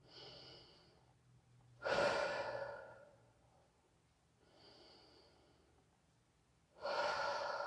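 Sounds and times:
deep breathing in through the nose and out through the mouth: 0.0s - 1.2s, 1.8s - 3.4s, 4.4s - 6.0s, 6.8s - 7.6s.

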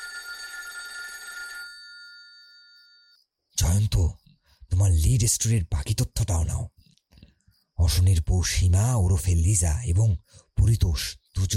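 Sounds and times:
telephone ringing with a bright metallic bell trill: 0.0s - 3.2s
speech: 3.6s - 6.8s, 7.8s - 11.5s.

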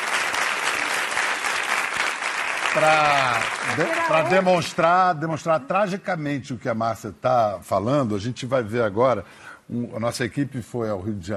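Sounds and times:
audience applause: 0.0s - 4.8s
speech: 2.8s - 11.3s.

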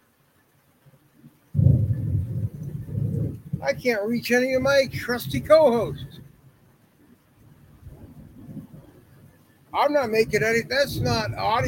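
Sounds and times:
deep rumble of thunder from a storm with lightning: 1.6s - 6.4s, 7.5s - 11.6s
speech: 3.6s - 6.2s, 9.9s - 11.6s.

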